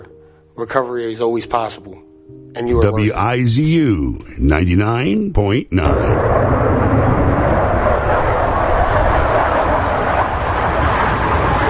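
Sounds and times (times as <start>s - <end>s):
speech: 0.6s - 6.4s
fighter jets taking off and landing: 5.9s - 11.6s.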